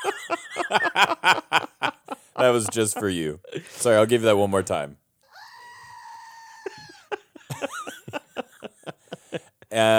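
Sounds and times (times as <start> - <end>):
laughter: 0.0 - 4.0, 5.4 - 9.9
speech: 2.5 - 5.0, 9.8 - 9.9
novelty screaming goat toy: 5.4 - 7.0.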